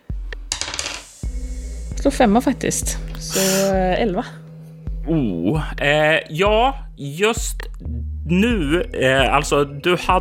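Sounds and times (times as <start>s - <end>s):
die rolled on a table for a tabletop game skill check: 0.5s - 1.1s
speech: 2.0s - 4.4s, 5.1s - 10.1s.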